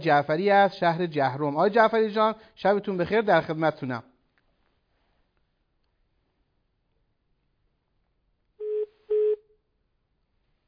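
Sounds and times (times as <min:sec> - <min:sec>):
speech: 0:00.0 - 0:04.1
telephone line tone after a caller's line disconnected: 0:08.6 - 0:09.4.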